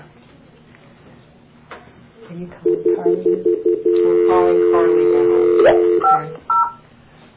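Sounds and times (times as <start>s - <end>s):
telephone keypad dialing tones: 2.7s - 6.8s.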